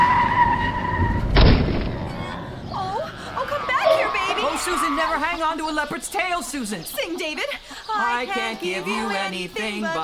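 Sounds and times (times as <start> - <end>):
car tire screech skidding to avoid a truck: 0.0 - 5.4
speech: 5.1 - 10.0.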